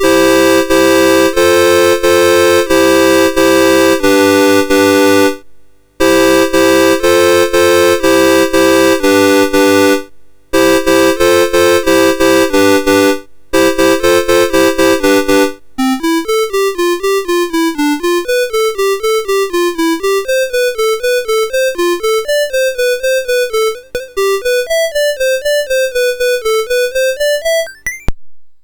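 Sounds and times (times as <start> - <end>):
synthesizer chord from a MOS6581R3 sound chip: 0.0 - 5.4, 6.0 - 28.1.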